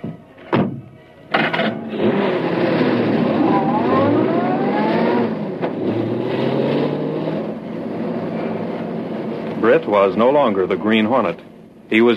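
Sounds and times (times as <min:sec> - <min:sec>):
convertible car engine cranking, starting and revving as the car pulls away: 0:01.6 - 0:10.3
speech: 0:09.9 - 0:12.1.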